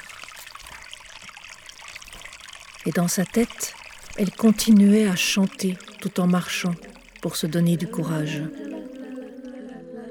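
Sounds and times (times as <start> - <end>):
rushing and trickling river water: 0.0 - 9.6
speech: 2.8 - 8.6.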